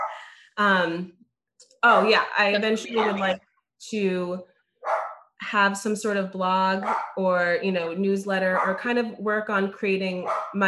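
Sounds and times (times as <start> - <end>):
dog barking: 0.0 - 0.2, 4.8 - 5.2, 6.8 - 7.2, 8.6 - 8.8, 10.2 - 10.6
speech: 0.6 - 1.2, 1.8 - 4.5, 5.4 - 10.6.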